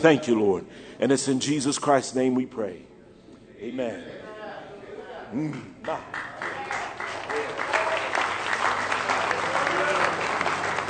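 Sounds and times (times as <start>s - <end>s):
speech: 0.0s - 2.9s, 3.6s - 4.2s, 5.3s - 6.5s
audience clapping in praise: 5.8s - 10.8s.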